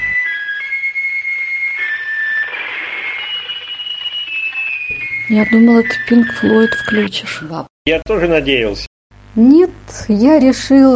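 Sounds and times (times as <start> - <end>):
high thin electronic signal tone from an artificial satellite of the Moon: 0.0 - 7.6
speech: 5.3 - 10.9.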